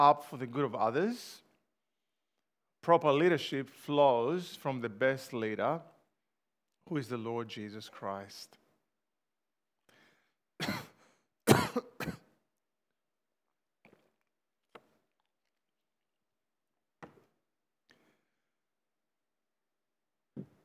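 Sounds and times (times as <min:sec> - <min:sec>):
speech: 0:00.0 - 0:01.4, 0:02.8 - 0:05.9, 0:06.9 - 0:08.6, 0:10.6 - 0:10.9
harsh coughs: 0:10.6 - 0:12.3
throat clearing: 0:10.6 - 0:12.3.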